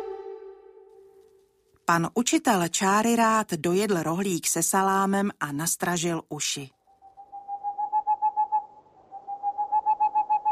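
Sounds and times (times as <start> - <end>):
speech: 1.9 - 6.8
owl clock hooting the hour: 6.9 - 10.4.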